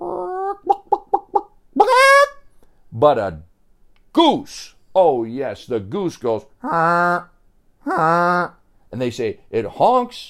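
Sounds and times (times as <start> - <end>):
person imitating chicken clucking: 0.0 - 2.5, 6.6 - 8.6
speech: 3.0 - 3.5, 4.2 - 10.2.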